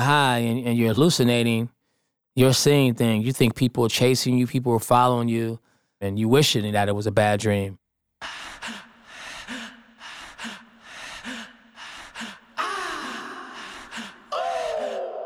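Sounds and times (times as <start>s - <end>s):
speech: 0.0s - 1.8s, 2.4s - 8.8s
rapid heavy panting breaths: 8.2s - 15.1s.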